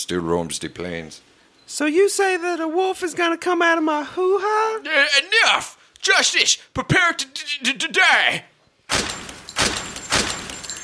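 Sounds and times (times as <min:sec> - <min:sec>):
speech: 0:00.0 - 0:09.2
gunshots in a staged shootout: 0:08.9 - 0:10.8.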